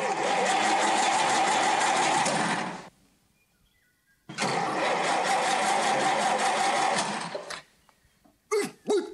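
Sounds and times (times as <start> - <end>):
car engine starting and revving hard: 0.0 - 2.9, 4.3 - 7.6.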